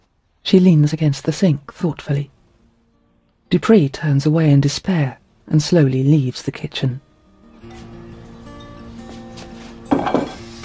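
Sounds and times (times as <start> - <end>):
speech: 0.5 - 2.4, 3.5 - 7.0
salad bowl set down on a kitchen island: 9.9 - 10.4.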